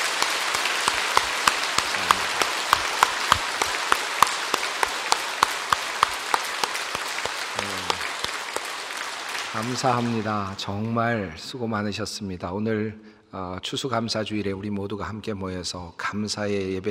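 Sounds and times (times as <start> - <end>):
sharper, louder hand claps near the front: 0.0 - 11.0
large congregation applauding: 0.0 - 11.2
speech: 9.6 - 16.8.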